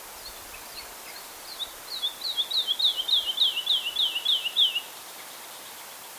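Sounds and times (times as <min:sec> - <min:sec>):
woodlark song: 0:00.0 - 0:04.9.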